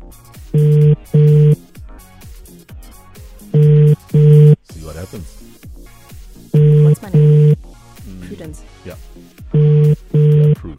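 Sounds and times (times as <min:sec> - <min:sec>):
speech: 0:00.1 - 0:01.1
outgoing phone call double ringing tone: 0:00.6 - 0:01.6, 0:03.6 - 0:04.6, 0:06.6 - 0:07.6, 0:09.6 - 0:10.6.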